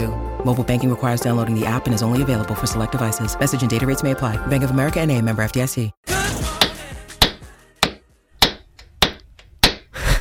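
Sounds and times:
speech: 0.0s - 6.1s
metallic hammer strikes: 6.1s - 9.9s.

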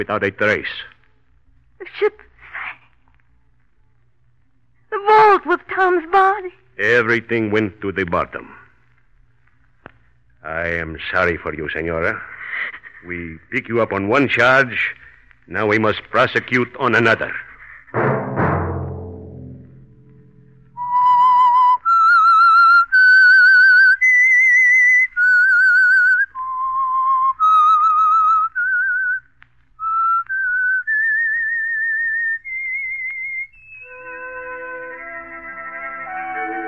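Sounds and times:
speech: 0.0s - 0.9s, 1.8s - 2.3s, 5.3s - 8.6s, 10.4s - 18.2s
low rumble: 18.0s - 21.1s
soft orchestral chords: 18.0s - 21.1s, 33.9s - 36.6s
lone person whistling a slow haunting melody: 20.7s - 29.2s, 29.8s - 36.6s.

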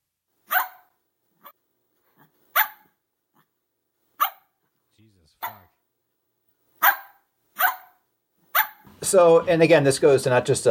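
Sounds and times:
recorded dog bark played by a smart speaker: 0.4s - 1.6s, 2.2s - 3.5s, 4.1s - 4.6s, 5.4s - 5.8s, 6.8s - 8.9s
speech: 5.0s - 5.8s, 9.0s - 10.6s.

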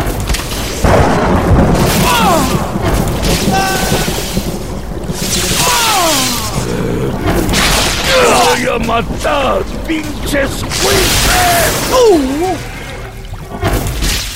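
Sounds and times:
crackling lightning strikes and rumbling: 0.0s - 14.3s
thunder boom: 0.0s - 14.3s
descending wails: 1.9s - 13.2s
speech: 8.8s - 12.7s.

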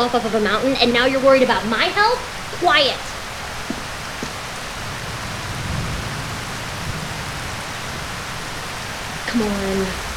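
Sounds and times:
speech: 0.0s - 3.1s, 9.4s - 10.0s
steady acid rain pouring down: 0.0s - 10.1s
sharper drips and taps on surfaces: 3.7s - 4.4s.

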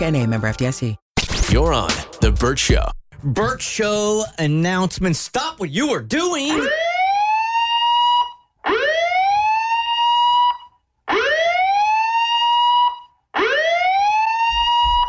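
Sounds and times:
speech: 0.0s - 6.8s
loud police siren wailing: 6.5s - 15.0s.

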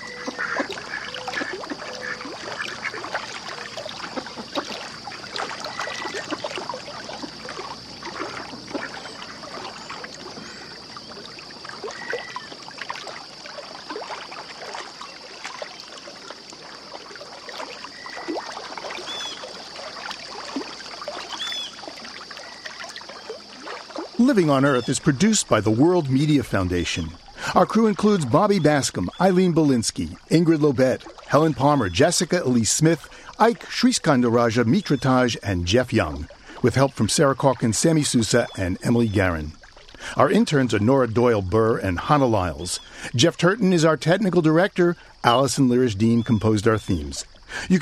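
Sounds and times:
river water flowing and lapping with small splashes and gurgles: 0.0s - 47.8s
speech: 24.3s - 47.8s.

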